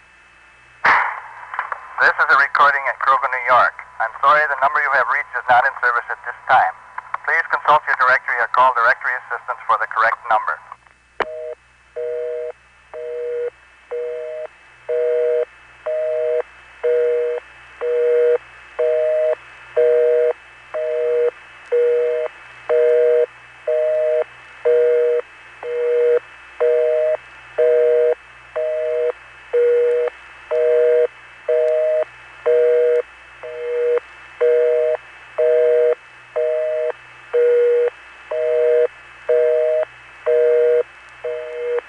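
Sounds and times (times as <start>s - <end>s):
speech: 2.0s - 10.6s
telephone busy signal with beating low tone: 11.3s - 41.8s.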